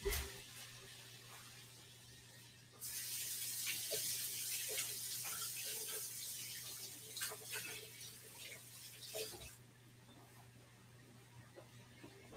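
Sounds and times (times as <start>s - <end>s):
running tap water as hands are washed: 0.1s - 9.6s.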